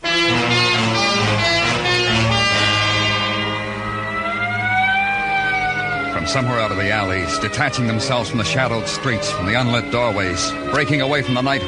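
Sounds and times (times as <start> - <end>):
ambulance siren wailing: 0.0 - 11.6
speech: 6.3 - 11.6.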